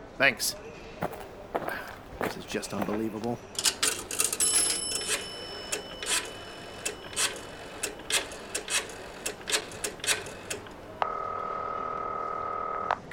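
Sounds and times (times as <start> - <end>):
speech: 0.2 - 3.6
telephone being dialed next to a train station ticket office: 3.6 - 10.8
telephone line tone buzzing: 4.4 - 13.1.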